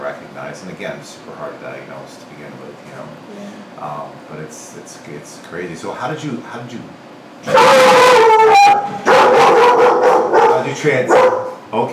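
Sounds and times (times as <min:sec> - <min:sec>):
speech: 0:00.5 - 0:07.8, 0:10.6 - 0:11.9
dog giving yelping howls: 0:07.4 - 0:11.6.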